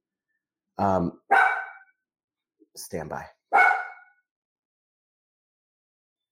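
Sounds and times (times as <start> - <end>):
speech: 0.8 - 1.4, 2.8 - 3.4
dog barking: 1.3 - 1.9, 3.5 - 4.2.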